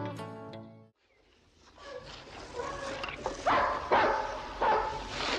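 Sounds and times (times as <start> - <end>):
pack of hunting dogs barking and baying: 1.8 - 5.3.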